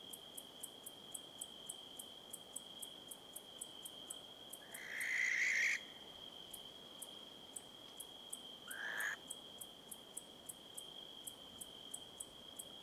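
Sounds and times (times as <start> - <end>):
Tyto alba barn owl: 4.6 - 5.9, 8.7 - 9.2.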